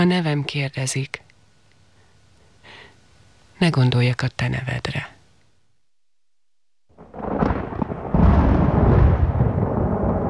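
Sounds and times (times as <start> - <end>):
speech: 0.0 - 1.2, 3.6 - 5.2
rolling thunder in a thunderstorm: 6.9 - 10.2.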